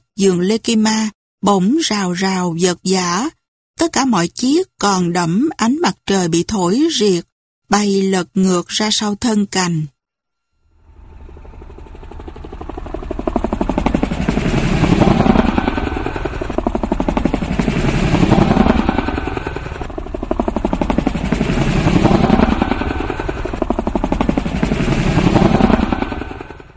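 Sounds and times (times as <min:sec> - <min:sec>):
speech: 0:00.2 - 0:09.9
heavy helicopter rotors thumping low overhead: 0:10.8 - 0:26.7.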